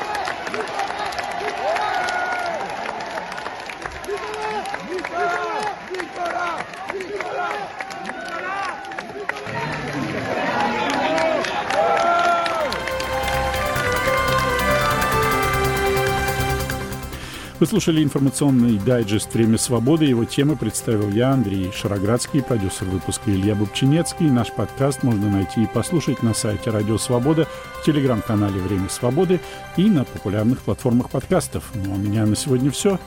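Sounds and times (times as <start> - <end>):
large crowd of supporters clapping and cheering: 0.0 - 33.0
music: 12.6 - 33.0
speech: 17.6 - 33.0.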